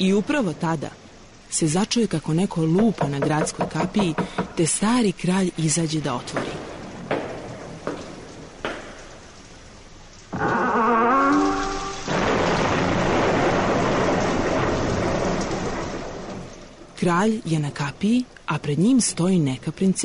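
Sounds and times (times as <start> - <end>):
speech: 0.0 - 7.2, 17.0 - 20.0
heavy downpour: 0.0 - 19.2
thunder: 11.6 - 16.6.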